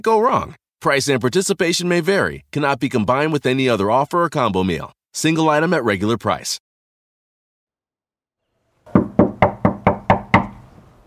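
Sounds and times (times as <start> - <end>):
speech: 0.0 - 6.6
firm knocks on a wooden door: 8.9 - 10.6.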